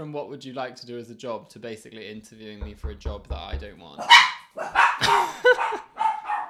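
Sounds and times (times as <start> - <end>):
speech: 0.0 - 5.8
dogs barking at the door: 4.0 - 6.4.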